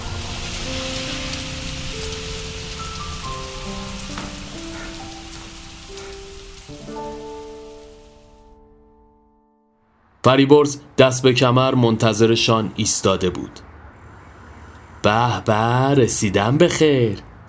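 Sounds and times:
steady dense rainfall: 0.0 - 8.6
soft sustained musical notes: 0.0 - 9.8
speech: 10.2 - 13.7, 15.0 - 17.3.

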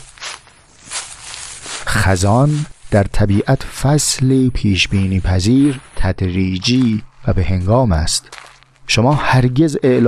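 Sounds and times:
footsteps crunching through dry yellow leaves: 0.0 - 10.0
speech: 1.9 - 10.0.

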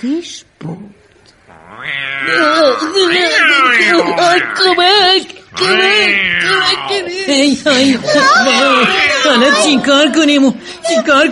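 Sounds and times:
speech: 0.0 - 11.3
cat yowling: 1.6 - 4.9, 5.6 - 7.1, 8.5 - 9.7.

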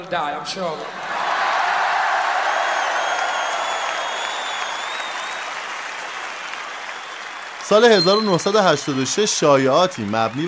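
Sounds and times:
speech: 0.0 - 1.2, 7.7 - 10.4
thousands of concert fans cheering and applauding at Wembley Stadium in London: 0.8 - 10.4
high whistles from concert fans: 2.4 - 9.8.

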